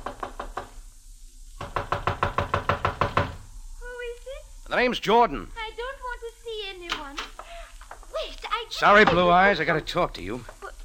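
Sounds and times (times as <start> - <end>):
knocking on the wooden door of a houseboat on the Nile: 0.0 - 0.8, 1.6 - 3.4, 9.0 - 9.5
speech: 4.7 - 5.6, 8.8 - 10.5.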